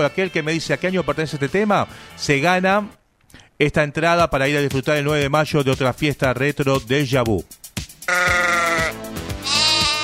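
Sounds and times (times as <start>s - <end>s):
speech: 0.0s - 7.6s
sheep bleating: 8.1s - 10.0s.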